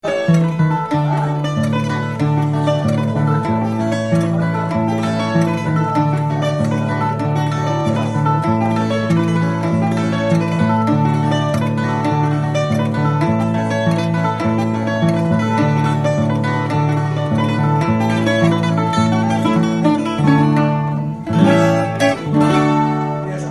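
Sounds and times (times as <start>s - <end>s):
fado guitar: 0.0s - 23.4s.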